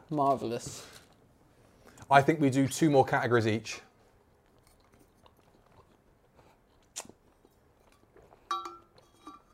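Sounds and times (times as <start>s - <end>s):
speech: 0.1s - 1.0s, 2.1s - 3.9s
chewing hard sweets: 4.2s - 9.1s
faint clinking: 8.4s - 9.5s.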